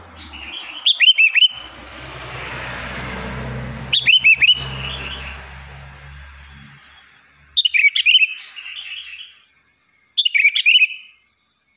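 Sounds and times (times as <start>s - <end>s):
sooty-headed bulbul singing: 0.0s - 2.5s, 3.1s - 11.7s
low hum: 1.5s - 7.5s.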